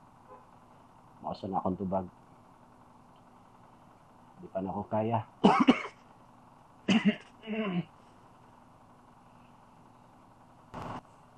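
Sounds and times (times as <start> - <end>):
low steady hum: 0.0 - 11.3
speech: 1.3 - 2.2, 4.4 - 5.8, 7.0 - 7.9
person coughing in short harsh bursts: 5.4 - 6.0, 6.9 - 7.9.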